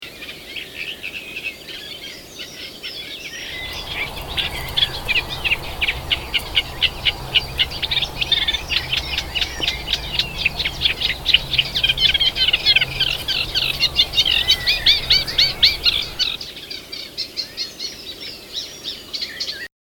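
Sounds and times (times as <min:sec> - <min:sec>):
Eurasian reed warbler singing: 0:03.4 - 0:17.8.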